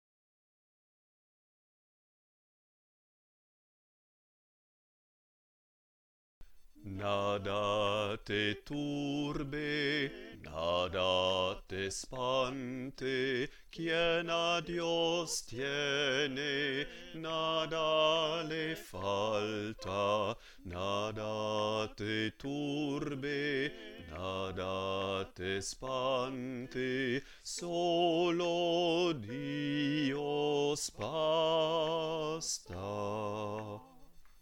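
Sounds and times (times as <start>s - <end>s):
bass voice singing a chant: 6.8s - 34.1s.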